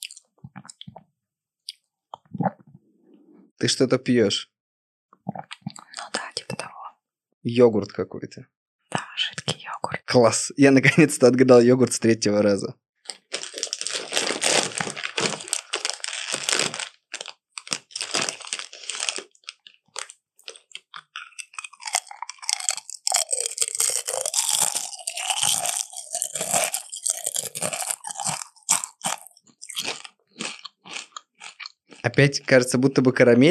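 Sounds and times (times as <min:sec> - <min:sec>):
person crunching and chewing a vegetable or fruit during a meal: 0:00.0 - 0:01.0, 0:13.1 - 0:32.2
speech: 0:03.6 - 0:04.5, 0:07.4 - 0:08.6, 0:10.1 - 0:12.8, 0:32.2 - 0:33.4
snack packet rustling: 0:13.1 - 0:31.6.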